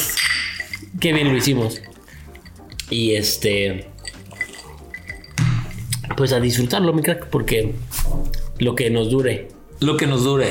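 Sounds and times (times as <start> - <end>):
glasses clinking together in a toast: 0.0 - 6.8
speech: 1.0 - 1.9, 2.9 - 4.0, 6.2 - 10.4.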